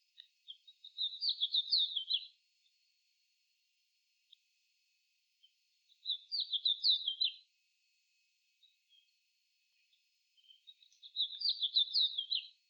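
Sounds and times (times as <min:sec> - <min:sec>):
Haemorhus mexicanus: 0:00.4 - 0:02.3, 0:06.0 - 0:07.4, 0:10.4 - 0:12.5.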